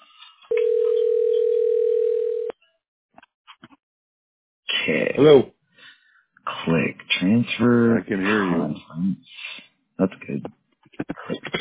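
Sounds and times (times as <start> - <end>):
telephone dial tone while dialing a cell phone: 0.5 - 2.5
speech: 4.9 - 5.6, 6.6 - 9.4, 10.0 - 10.6.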